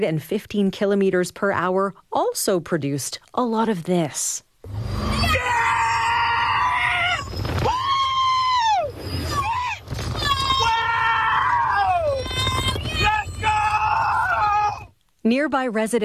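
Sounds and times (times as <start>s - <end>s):
speech: 0.0s - 5.0s, 15.3s - 16.0s
roller coaster riders screaming on a theme park ride: 4.7s - 14.9s.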